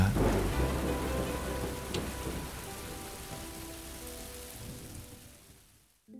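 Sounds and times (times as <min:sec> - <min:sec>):
steady rain hissing densely: 0:00.0 - 0:06.1.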